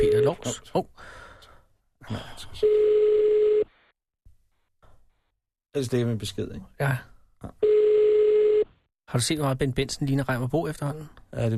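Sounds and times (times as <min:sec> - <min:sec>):
speech: 0:00.2 - 0:01.2, 0:02.0 - 0:03.4, 0:05.8 - 0:07.8, 0:09.1 - 0:11.5
steady loud mid-pitched telephone dial tone: 0:02.6 - 0:03.7, 0:07.6 - 0:08.7.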